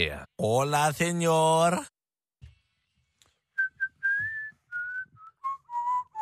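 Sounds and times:
speech: 0.0 - 1.9
whistling in a pop song: 3.6 - 6.2.

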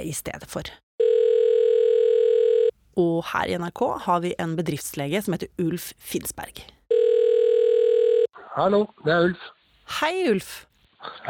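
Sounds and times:
speech: 0.0 - 0.8, 3.0 - 6.8, 8.6 - 11.2
telephone ringing tone while placing a call to a company doctor: 1.0 - 2.7, 6.9 - 8.3.

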